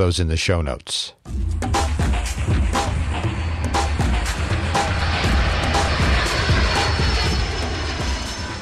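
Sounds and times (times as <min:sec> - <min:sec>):
speech: 0:00.0 - 0:01.4
aircraft flying overhead: 0:02.2 - 0:08.6.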